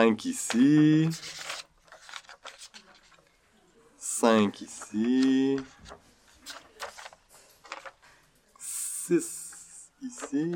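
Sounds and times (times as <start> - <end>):
speech: 0.0 - 1.5, 4.2 - 6.0, 9.1 - 9.4, 10.0 - 10.5
worksheets rustling and crinkling as they are handed out: 0.2 - 3.4, 4.4 - 8.3, 10.0 - 10.5.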